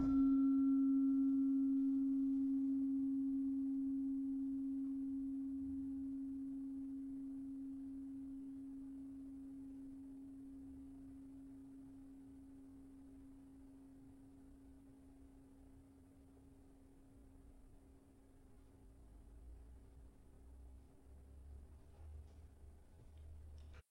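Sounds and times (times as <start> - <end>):
slentem C sharp 4 note: 0.0 - 11.8.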